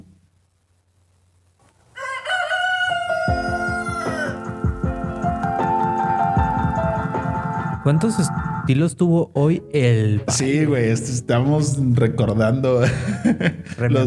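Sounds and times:
rooster crowing with robotic pitch-corrected autotune effect: 1.6 - 5.4
rhythmic beat with bass thumps: 3.3 - 8.7
speech: 7.9 - 14.0
laughter: 12.8 - 14.0.

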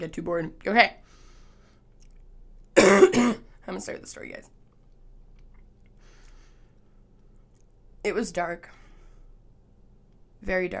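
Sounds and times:
speech: 0.0 - 1.2, 3.0 - 4.6, 8.0 - 8.8, 10.4 - 10.7
faint low hum: 0.0 - 10.7
loud harsh cough after a bong hit: 2.8 - 3.5.

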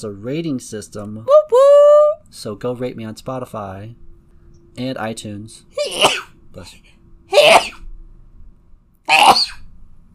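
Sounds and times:
speech: 0.0 - 1.6, 2.3 - 4.0, 4.8 - 7.7
person sneezing: 5.8 - 6.3, 7.3 - 7.8, 9.1 - 9.7.

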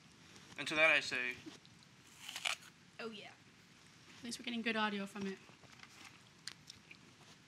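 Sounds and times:
hiss: 0.0 - 7.4
speech: 0.6 - 1.7, 3.0 - 3.4, 4.2 - 5.5
person chewing a juicy apple: 6.2 - 7.1.

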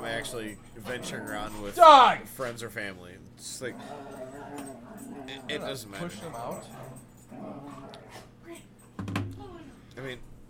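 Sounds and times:
dogs growling and snarling: 0.0 - 2.2, 3.6 - 8.5
speech: 0.1 - 8.3.

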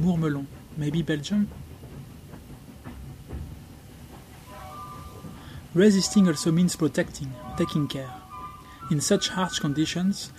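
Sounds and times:
speech: 0.0 - 1.7, 5.8 - 8.2, 8.9 - 10.3
train wheel clacks: 0.0 - 8.1
train rolling along the rails: 0.0 - 10.3.

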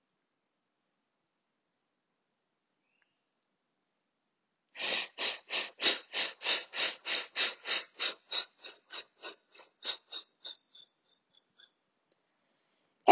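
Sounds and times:
rapid forceful nasal breathing: 4.8 - 10.8.

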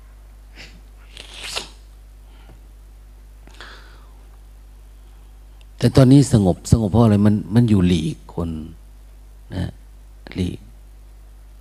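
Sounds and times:
person sneezing: 0.5 - 1.8
speech: 5.8 - 8.8, 9.5 - 10.6.

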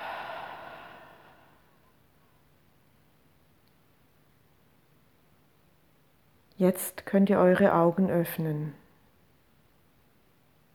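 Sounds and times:
deep breath out during a guided yoga relaxation: 0.0 - 1.9
speech: 6.6 - 8.8.

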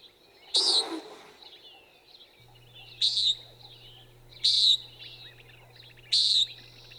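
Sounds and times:
common nighthawk nasal buzzy calls: 2.4 - 6.9
faint steady hum: 2.4 - 6.9.

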